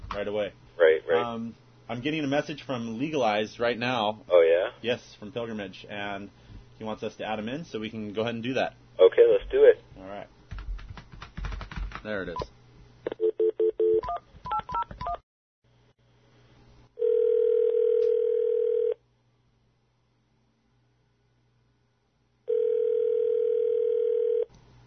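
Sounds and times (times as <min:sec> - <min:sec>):
low electrical hum: 0:00.0 - 0:14.5, 0:15.7 - 0:24.8
speech: 0:00.2 - 0:10.4, 0:12.0 - 0:12.5
long steady phone-line tones: 0:17.0 - 0:19.0, 0:22.5 - 0:24.5.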